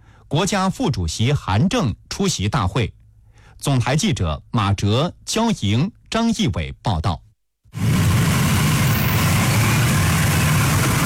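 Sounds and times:
speech: 0.3s - 3.0s, 3.6s - 7.2s
broad road noise from a motorcade: 7.8s - 11.0s
ceremonial motorcade cars and escort motorcycle engines rumbling: 7.8s - 11.0s.

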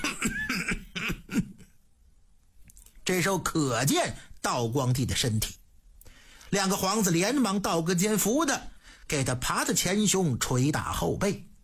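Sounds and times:
person coughing harsh raspy coughs: 0.0s - 1.8s
speech: 3.1s - 5.6s, 6.5s - 11.5s.

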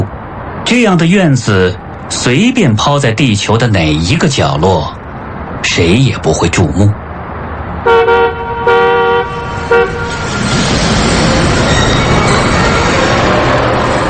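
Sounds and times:
loud rumble of engine and road noise: 0.0s - 14.0s
speech: 0.7s - 5.0s, 5.7s - 7.0s
car horn honking: 7.8s - 10.3s.

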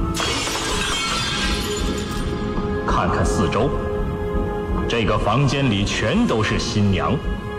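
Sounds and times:
cascade of falling glass shards: 0.1s - 2.5s
glass pane shattering: 0.1s - 2.5s
speech: 3.0s - 3.9s, 4.9s - 7.5s.

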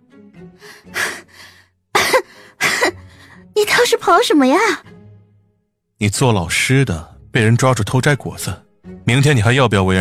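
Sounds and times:
woman coughing harshly after a long run through cold wind: 2.0s - 3.0s
speech: 3.6s - 4.9s, 6.0s - 9.9s.

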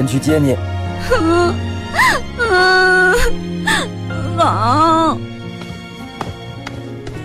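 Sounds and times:
speech: 0.0s - 5.3s
child crying: 1.0s - 5.2s.

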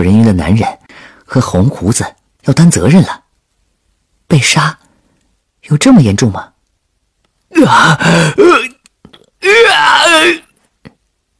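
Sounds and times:
speech: 0.0s - 3.2s, 4.3s - 4.8s, 5.6s - 6.5s, 7.5s - 8.6s, 9.4s - 10.4s
loud voice letting out short strained groans from a room: 7.5s - 8.8s, 9.4s - 10.5s
person imitating a wavering anguished heart-rending wail from a room: 7.5s - 8.8s, 9.4s - 10.5s.

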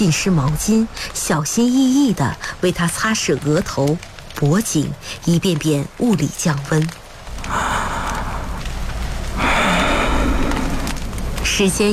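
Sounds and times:
speech: 0.0s - 7.6s, 11.6s - 11.9s
heavy laboured rasping breathing of an old man with a high fever: 7.4s - 8.7s, 9.3s - 11.0s.

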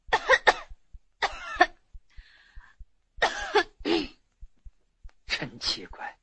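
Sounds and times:
person coughing loudly in harsh bursts: 0.1s - 1.8s, 3.2s - 4.2s
faint steady low ticks: 0.6s - 6.2s.

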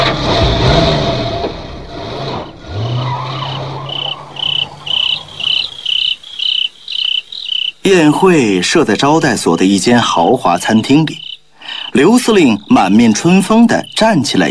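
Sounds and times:
car engine rumbling as the car drives away: 0.0s - 6.7s
crickets chirping at night: 2.4s - 14.4s
speech: 7.9s - 11.2s, 12.0s - 14.4s.

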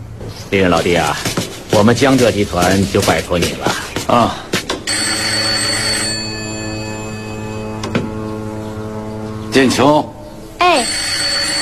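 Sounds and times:
speech: 0.3s - 4.4s, 9.5s - 10.1s, 10.7s - 11.0s
old-style telephone bell ringing: 4.9s - 7.8s, 10.6s - 11.6s.

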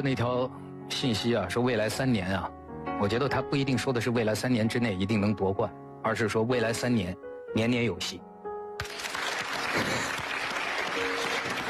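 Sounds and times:
speech: 0.0s - 9.1s
studio audience clapping: 8.8s - 11.6s.

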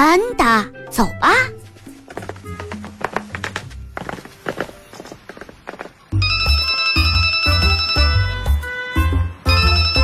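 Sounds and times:
speech: 0.0s - 1.6s
loud bright phone ringtone melody with thumping beats for an incoming call: 6.2s - 8.9s, 9.5s - 10.0s.

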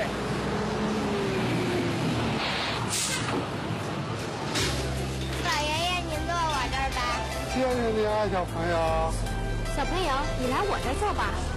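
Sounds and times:
city bus engine rumbling and winding down as it slows: 0.0s - 11.5s
sharp bursts of hissing air from a bus: 2.4s - 3.4s
speech: 7.8s - 11.5s.

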